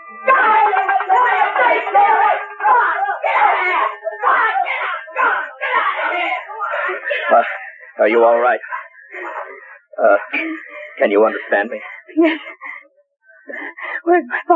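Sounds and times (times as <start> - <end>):
people screaming while driving off rats: 0.0 - 11.3
people yelling in frantic overlapping bursts: 0.0 - 11.7
laughter: 0.0 - 14.5
speech: 7.2 - 8.8, 10.0 - 12.5, 14.1 - 14.5.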